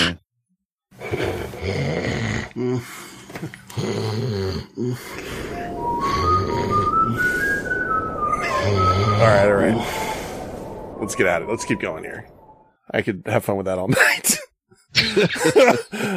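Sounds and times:
rough snoring-like breath: 1.0s - 5.6s
speech: 2.6s - 7.3s, 8.7s - 10.1s, 11.0s - 12.3s, 12.9s - 14.4s, 15.0s - 16.1s
thin nose whistle climbing in pitch: 5.2s - 11.6s.

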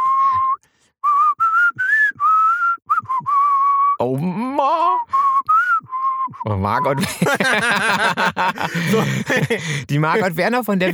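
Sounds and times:
person whistling a short melody: 0.0s - 4.0s, 5.0s - 6.6s
speech: 4.0s - 5.1s, 6.4s - 10.9s
laughter: 7.0s - 10.9s.

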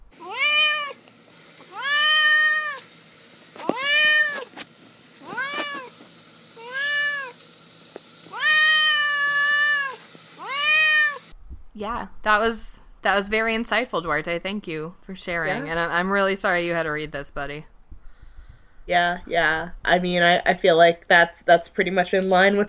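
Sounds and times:
cat meowing with drawn-out insistent calls: 0.2s - 1.0s, 1.7s - 2.8s, 3.6s - 4.5s, 5.2s - 6.0s, 6.6s - 7.4s, 8.3s - 11.3s
speech: 11.8s - 17.7s, 18.9s - 22.6s.

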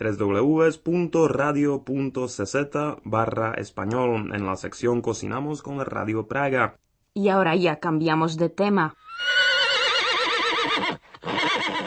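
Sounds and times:
speech: 0.0s - 9.4s
horse neighing in a long wavering whinny: 9.0s - 11.8s.

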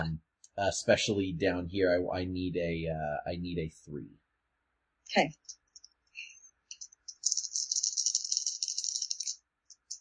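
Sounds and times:
speech: 0.0s - 4.2s, 5.1s - 5.6s
dice rattling and clattering across a hard surface: 6.7s - 10.0s.

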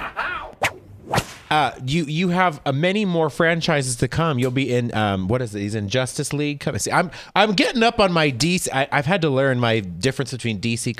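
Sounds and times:
whip swishing through the air: 0.6s - 1.5s
speech: 1.5s - 10.9s.

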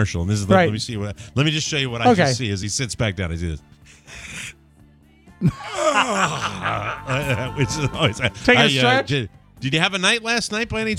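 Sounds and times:
speech: 0.0s - 4.6s, 5.4s - 10.9s
person yawning: 5.4s - 7.6s
laughter: 5.4s - 9.1s.

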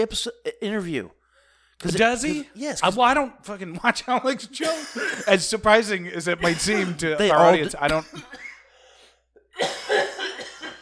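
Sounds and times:
speech: 0.0s - 1.2s, 1.8s - 8.5s
harsh coughs: 4.6s - 5.5s, 6.4s - 8.7s, 9.5s - 10.8s.

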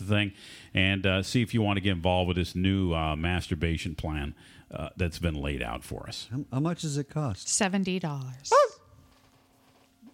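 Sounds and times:
speech: 0.1s - 8.8s
man imitating a puppy's whimper: 8.5s - 8.8s.

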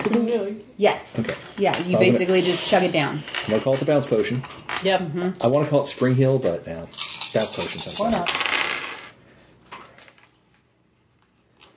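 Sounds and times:
speech: 0.1s - 8.6s
dice clattering and tumbling on a hard surface: 6.9s - 9.2s.

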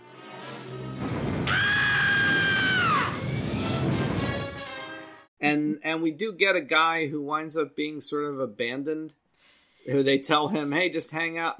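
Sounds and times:
rocket engine roar: 0.9s - 4.7s
cartoonish high-pitched scream: 1.5s - 3.2s
speech: 5.5s - 9.2s, 9.8s - 11.5s.

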